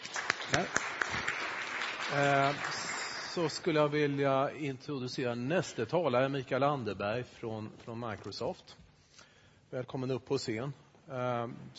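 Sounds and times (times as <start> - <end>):
audience applause: 0.0 - 3.9
speech: 0.5 - 0.8, 2.1 - 2.8, 3.4 - 8.8, 9.7 - 11.7.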